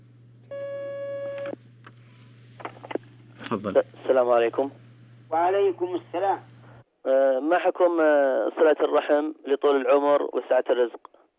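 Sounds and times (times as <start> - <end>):
constant low hum: 0.0 - 6.8
telephone line tone as a call is taken: 0.5 - 1.6
speech: 3.5 - 11.1.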